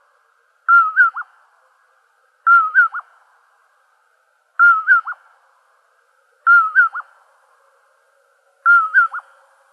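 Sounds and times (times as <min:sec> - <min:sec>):
common poorwill giving whistled poor-will-ip phrases: 0:00.7 - 0:01.2, 0:02.5 - 0:03.0, 0:04.6 - 0:05.2, 0:06.5 - 0:07.0, 0:08.7 - 0:09.2.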